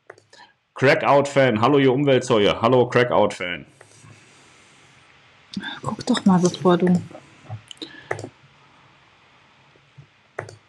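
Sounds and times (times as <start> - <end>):
faint hiss: 0.0 - 10.6
computer mouse clicks: 0.1 - 0.4, 7.6 - 8.4, 10.4 - 10.6
speech: 0.8 - 3.7, 6.1 - 7.2.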